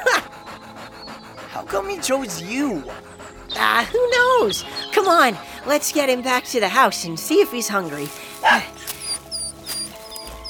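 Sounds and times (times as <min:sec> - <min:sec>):
speech: 0:01.6 - 0:08.7
small dog yipping and squeaking: 0:08.8 - 0:10.4.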